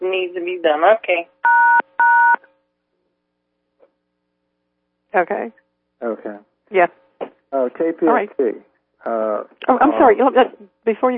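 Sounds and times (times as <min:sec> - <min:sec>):
speech: 0:00.1 - 0:01.8, 0:05.1 - 0:11.1
telephone touch-tone keypad beeps: 0:01.4 - 0:02.4.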